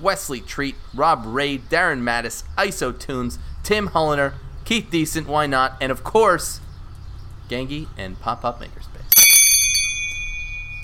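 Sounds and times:
speech: 0.0 - 6.6, 7.5 - 8.9
bell ringing twice: 9.1 - 10.8.

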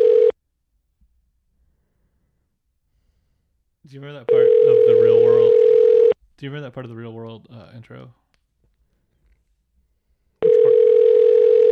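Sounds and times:
electronic telephone ringing: 0.0 - 0.3, 4.3 - 6.2, 10.4 - 11.7
speech: 3.9 - 5.6, 6.4 - 8.2.

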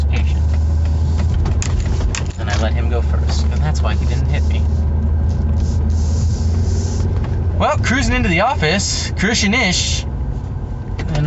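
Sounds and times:
GMC pickup truck engine rumbling while driving past: 0.0 - 11.2
pickup truck road noise: 0.0 - 11.2
speech: 7.6 - 10.1.

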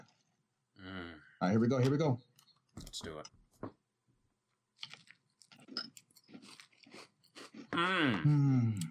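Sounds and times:
speech: 1.4 - 3.8, 7.8 - 8.8
crunchy cereal in cold milk being chewed: 4.8 - 7.8.

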